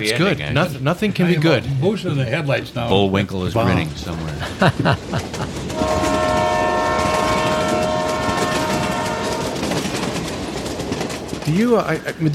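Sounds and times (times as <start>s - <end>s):
speech: 0.0s - 5.8s, 11.5s - 12.3s
rumble and rattle of a passing train: 1.3s - 12.3s
laughter: 3.7s - 5.8s
train whistle blowing one long steady chord: 5.7s - 9.8s.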